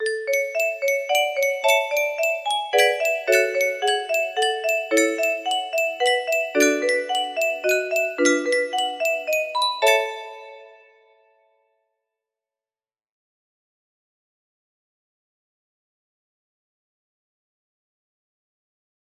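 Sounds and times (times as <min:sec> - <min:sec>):
chimes: 0:00.0 - 0:11.1
music box melody: 0:00.0 - 0:11.1.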